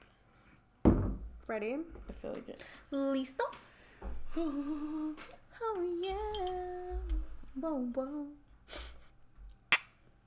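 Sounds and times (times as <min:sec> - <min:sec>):
speech: 0:01.5 - 0:08.9
shot glasses of tequila clinking together: 0:06.1 - 0:06.7, 0:09.7 - 0:10.0.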